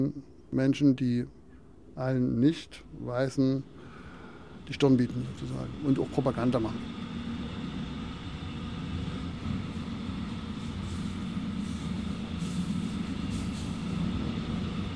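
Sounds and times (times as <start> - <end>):
speech: 0.0 - 1.4, 2.0 - 3.8, 4.7 - 7.0
train rumbling while arriving at station: 3.6 - 14.9.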